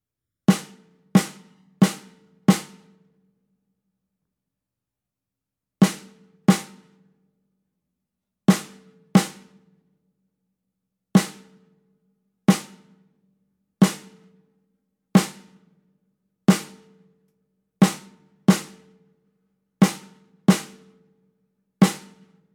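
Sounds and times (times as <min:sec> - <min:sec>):
snare drum duet: 0:00.5 - 0:03.0, 0:05.8 - 0:07.0, 0:08.5 - 0:09.7, 0:11.2 - 0:11.7, 0:12.5 - 0:13.0, 0:13.8 - 0:14.4, 0:15.2 - 0:15.7, 0:16.5 - 0:17.1, 0:17.8 - 0:19.0, 0:19.8 - 0:21.0, 0:21.8 - 0:22.4.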